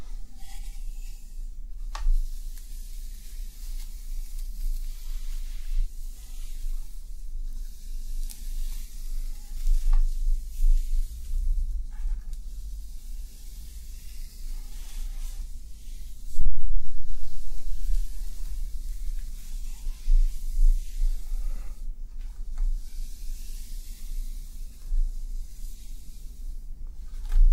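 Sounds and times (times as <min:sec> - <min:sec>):
soft rustling of hair being handled: 0:00.0 - 0:26.3
steady low hum: 0:00.0 - 0:27.5.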